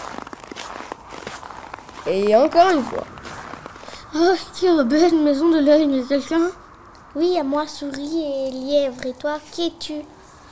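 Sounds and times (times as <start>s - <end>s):
footsteps: 0.0s - 4.7s
speech: 2.0s - 3.2s, 4.1s - 10.2s.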